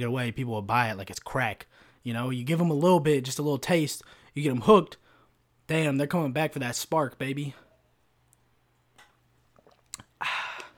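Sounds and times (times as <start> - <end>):
speech: 0.0 - 5.0, 5.7 - 7.6
slurping sip of raspberry lemonade Mountain Dew soda: 9.5 - 10.7
soft mouth clicks and wet smacks: 9.6 - 10.7.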